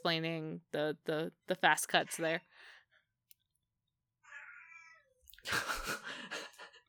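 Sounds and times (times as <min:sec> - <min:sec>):
speech: 0:00.0 - 0:02.7, 0:05.4 - 0:06.4
cat meowing sadly: 0:04.3 - 0:05.1.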